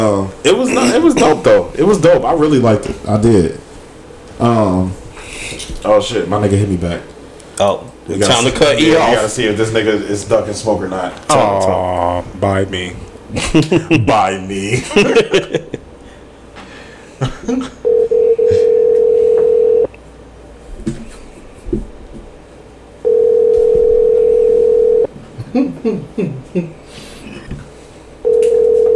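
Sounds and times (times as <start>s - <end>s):
speech: 0.0s - 3.7s, 4.4s - 15.8s, 17.2s - 18.0s, 25.5s - 26.8s
laughter: 13.3s - 15.9s, 17.2s - 17.8s
phone line ringback tone: 17.8s - 19.9s, 23.0s - 25.1s, 28.2s - 28.9s.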